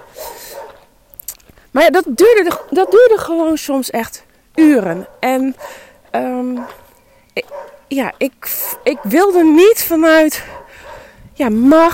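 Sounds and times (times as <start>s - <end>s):
guard dogs barking and yelping: 0.0s - 0.9s, 2.4s - 3.4s, 5.0s - 7.9s, 8.5s - 9.7s, 10.4s - 11.2s
speech: 1.8s - 6.8s, 7.4s - 10.6s, 11.4s - 11.9s.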